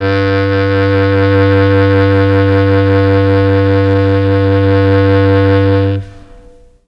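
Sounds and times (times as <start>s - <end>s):
mellotron clarinet sound playing G1: 0.0s - 6.8s.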